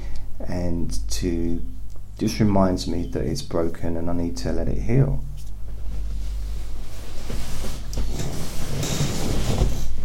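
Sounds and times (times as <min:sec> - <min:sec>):
steady low hum: 0:00.0 - 0:10.0
speech: 0:00.6 - 0:05.3
chair creaking and squeaking: 0:07.3 - 0:10.0.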